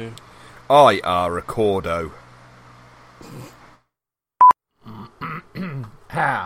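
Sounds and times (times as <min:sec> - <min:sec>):
speech: 0:00.7 - 0:02.2, 0:06.2 - 0:06.4
person coughing: 0:04.9 - 0:06.4.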